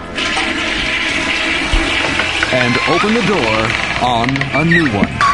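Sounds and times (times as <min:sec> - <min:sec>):
toilet flushing: 0:00.0 - 0:04.9
speech: 0:02.5 - 0:05.2.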